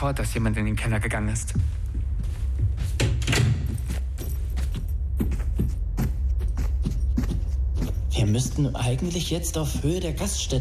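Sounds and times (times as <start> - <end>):
speech: 0.0 - 1.9, 8.2 - 10.6
steady low rumble: 0.0 - 10.6
clattering and jangling knocks: 2.9 - 5.7
door being pushed shut: 3.0 - 4.0.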